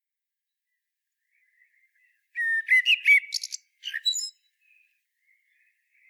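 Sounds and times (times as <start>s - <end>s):
common blackbird Turdus merula singing: 1.4s - 6.0s.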